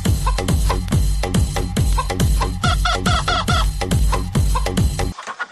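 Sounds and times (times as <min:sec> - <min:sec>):
rooster clucking and crowing: 0:00.1 - 0:00.7, 0:01.9 - 0:05.5.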